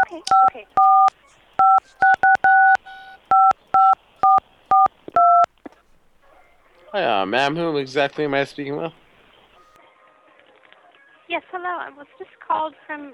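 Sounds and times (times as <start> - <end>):
telephone keypad dialing tones: 0.0 - 5.5
speech: 0.2 - 2.1, 7.0 - 9.0, 11.8 - 13.1.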